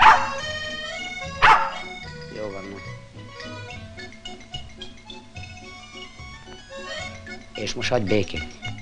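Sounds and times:
dog barking: 0.0 - 0.5, 1.4 - 2.0
dog whining: 0.0 - 2.0
speech: 7.6 - 8.6.

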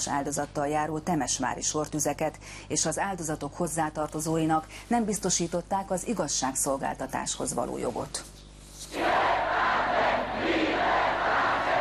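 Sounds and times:
speech: 0.0 - 8.4
crowd of tens of thousands chanting a slogan in unison: 8.9 - 11.8.

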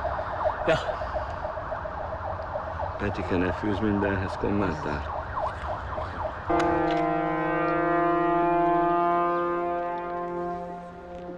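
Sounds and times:
wavering siren-like wail: 0.0 - 11.3
speech: 0.7 - 1.0, 3.0 - 5.2, 6.5 - 7.0
loud horn blast: 6.5 - 11.3.

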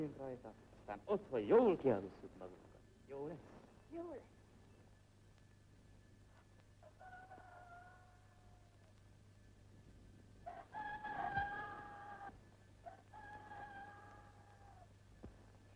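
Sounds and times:
speech: 0.0 - 4.4
rooster crowing cock-a-doodle-doo: 6.8 - 8.9, 10.4 - 14.9.

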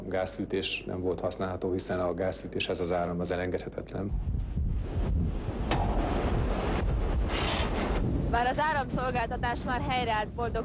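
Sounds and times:
speech: 0.1 - 5.9, 8.3 - 10.6
storm-force wind roaring and buffeting the microphone: 4.0 - 10.6.

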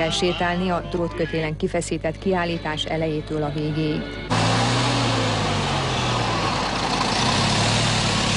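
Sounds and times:
speech: 0.0 - 4.5
old truck engine idling: 4.3 - 8.3.

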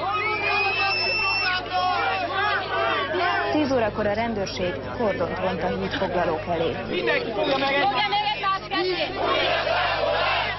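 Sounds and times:
large crowd on a blockaded bridge shouting and jeering at a man: 0.0 - 3.7, 6.8 - 10.5
speech: 3.8 - 9.8.

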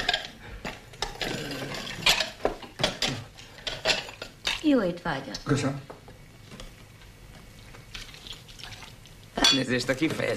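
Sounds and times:
dishes clinking and clattering on a table: 0.0 - 4.6, 9.4 - 10.2
speech: 4.6 - 6.0, 9.5 - 10.3.

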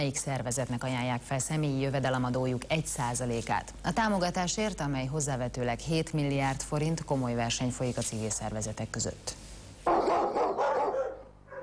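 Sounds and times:
speech: 0.0 - 9.4
stray dog at an animal shelter barking excitedly: 9.9 - 11.6.

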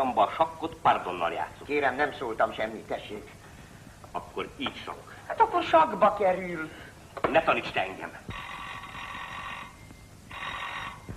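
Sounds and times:
speech: 0.0 - 3.4, 4.1 - 8.5
telephone bell ringing: 8.3 - 11.1.

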